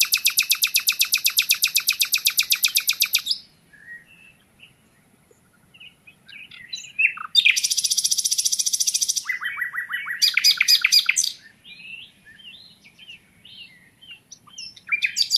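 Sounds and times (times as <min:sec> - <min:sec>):
common nightingale Luscinia megarhynchos song: 0:00.0 - 0:15.3.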